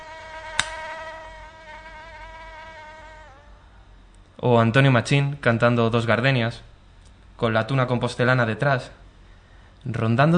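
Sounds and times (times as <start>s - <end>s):
mosquito buzzing: 0.0s - 3.9s
sharp click: 0.6s - 0.8s
speech: 4.4s - 6.7s, 7.4s - 9.0s, 9.8s - 10.3s.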